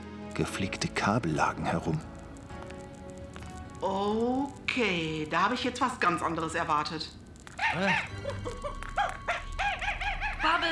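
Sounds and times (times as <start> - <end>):
speech: 0.4 - 2.2, 3.8 - 8.9
monkey giving shrill calls as it runs off: 7.5 - 10.7.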